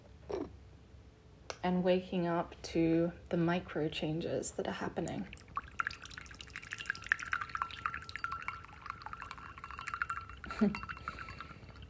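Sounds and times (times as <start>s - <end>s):
speech: 1.6s - 5.4s, 10.6s - 10.9s
tea pouring from a teapot into a bowl: 5.1s - 11.8s.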